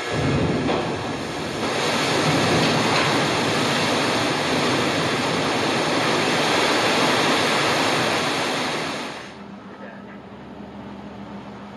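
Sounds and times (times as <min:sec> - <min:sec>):
rushing water from film set water effects: 0:00.1 - 0:09.4.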